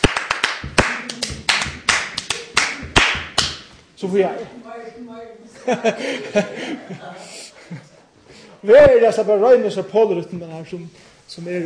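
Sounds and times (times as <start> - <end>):
rhythmic hand clapping in the Spanish style: 0.0 - 3.8
laughter: 0.9 - 3.0, 5.6 - 8.1
speech: 4.0 - 7.9, 8.6 - 11.6.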